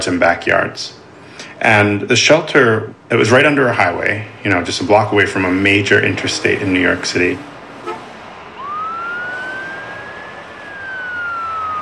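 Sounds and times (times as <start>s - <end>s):
speech: 0.0s - 1.0s, 1.6s - 8.0s
steady traffic rumble: 0.0s - 11.8s
single emergency vehicle siren wailing in slow rise and fall: 6.1s - 11.8s.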